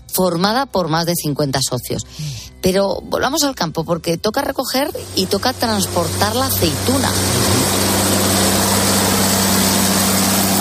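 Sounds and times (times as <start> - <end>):
speech: 0.2 - 7.5
tractor engine running: 4.6 - 10.5.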